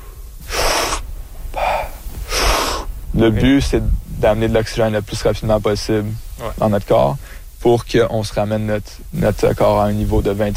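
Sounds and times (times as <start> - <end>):
recovery breathing of a freediver just surfaced: 0.0 - 3.1, 7.2 - 7.6
speech: 3.2 - 10.5.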